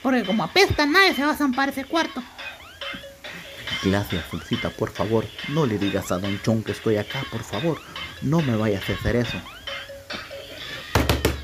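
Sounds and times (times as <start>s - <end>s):
speech: 0.0s - 3.0s, 3.8s - 10.2s
faint tonal sound: 0.0s - 11.4s
fist pounding heavily on a door: 11.0s - 11.4s.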